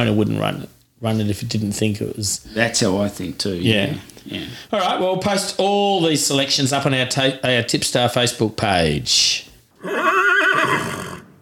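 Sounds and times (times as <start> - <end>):
speech: 0.0 - 11.0
horse whinnying: 9.8 - 11.4.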